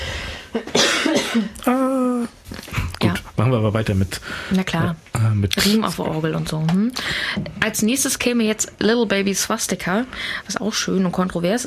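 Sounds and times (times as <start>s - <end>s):
person coughing: 0.6s - 1.9s
speech: 1.3s - 2.6s, 3.5s - 11.6s.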